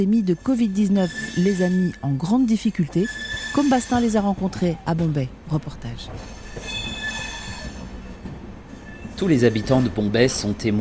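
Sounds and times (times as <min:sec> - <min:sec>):
speech: 0:00.0 - 0:06.7, 0:09.2 - 0:10.7
special midday train loaded with metal lunch boxes pulling into Churchgate central station in Bombay: 0:00.0 - 0:10.7
high thin train wheel squeals: 0:00.7 - 0:02.0, 0:02.9 - 0:04.7, 0:06.2 - 0:10.5.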